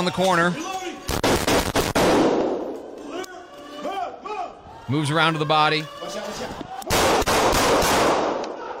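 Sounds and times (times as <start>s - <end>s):
speech: 0.0s - 0.7s, 4.9s - 6.6s
gunfire from a shooter firing out a window: 1.1s - 2.9s, 6.9s - 8.6s.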